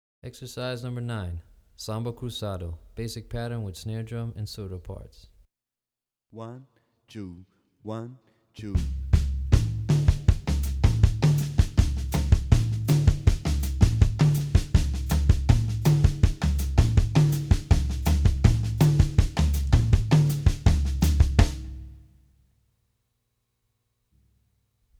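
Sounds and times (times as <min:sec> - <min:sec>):
drumset playing samba cruzado: 0:08.8 - 0:21.9.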